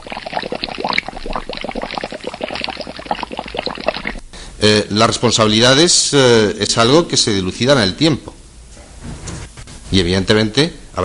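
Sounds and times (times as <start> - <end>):
gas bubbling from underwater volcano cone degassing at El Hierro, Canary Islands: 0.0 - 4.2
speech: 3.1 - 3.3, 4.6 - 8.3, 10.0 - 11.0.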